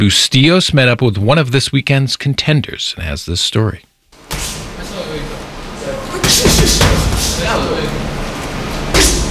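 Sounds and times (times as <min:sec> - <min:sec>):
speech: 0:00.0 - 0:05.2, 0:06.3 - 0:08.1
fists thudding against punching bags in a gym: 0:06.2 - 0:07.6.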